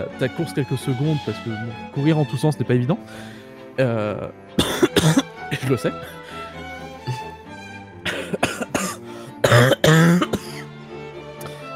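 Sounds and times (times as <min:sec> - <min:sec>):
speech: 0:00.0 - 0:06.3
person coughing hard: 0:04.6 - 0:05.8, 0:08.0 - 0:10.7.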